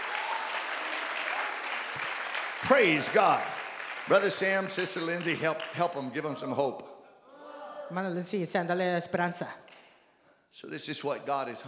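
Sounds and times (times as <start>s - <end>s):
congregation clapping hands during a church service: 0.0s - 6.4s
speech: 2.6s - 3.5s, 4.1s - 6.9s, 7.9s - 9.6s, 10.5s - 11.6s.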